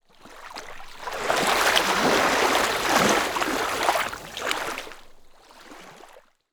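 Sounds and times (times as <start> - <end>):
lake wave: 1.0 - 5.1.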